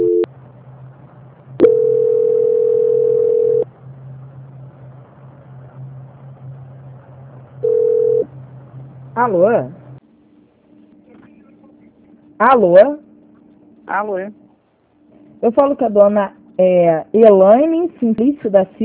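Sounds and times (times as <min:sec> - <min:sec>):
low constant hum: 0:00.0 - 0:18.8
telephone tones during a call transfer: 0:01.6 - 0:03.6, 0:07.6 - 0:08.3
speech: 0:09.2 - 0:09.8, 0:12.4 - 0:13.0, 0:13.9 - 0:14.4, 0:15.4 - 0:18.8.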